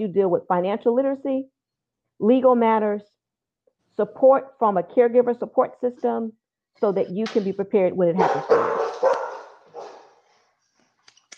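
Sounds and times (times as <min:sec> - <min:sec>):
speech: 0:00.0 - 0:01.6, 0:02.2 - 0:03.2, 0:04.0 - 0:09.1
dog barking: 0:08.2 - 0:10.2.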